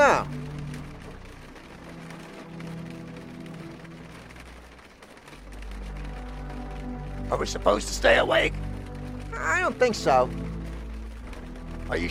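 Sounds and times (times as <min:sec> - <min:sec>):
steady rain falling in a dense hiss: 0:00.0 - 0:12.0
speech: 0:07.3 - 0:08.6, 0:09.6 - 0:10.4, 0:11.9 - 0:12.0.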